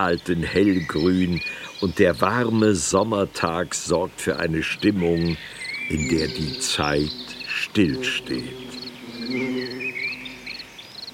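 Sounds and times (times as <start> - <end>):
speech: 0.0 - 9.9
crickets chirping on a warm summer day among overgrown slopes and rocks: 0.0 - 11.1
continuous droning buzz: 5.9 - 11.1.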